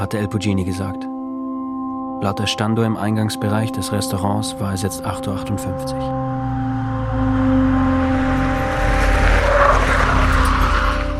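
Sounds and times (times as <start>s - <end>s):
speech: 0.0s - 1.1s, 2.2s - 7.8s
vehicle engine speeding past a parked Jeep: 6.2s - 11.1s.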